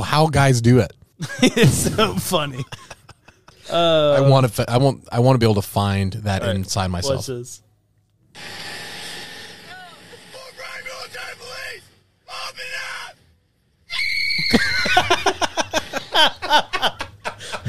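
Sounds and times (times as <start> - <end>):
speech: 0.1 - 3.0, 3.7 - 7.6, 8.4 - 8.7
laughter: 1.2 - 4.3, 14.4 - 17.6
man's loud high-pitched shrieking scream: 10.5 - 13.1
man's short vocal outbursts and rapid choppy cries: 13.9 - 15.1.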